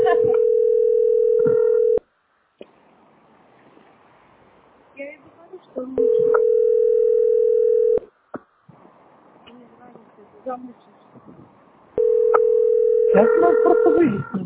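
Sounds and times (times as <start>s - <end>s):
steady electronic telephone line tone while waiting in queue: 0.0s - 2.0s, 6.0s - 8.0s, 12.0s - 14.0s
laughter: 13.2s - 14.4s
speech: 13.2s - 14.4s.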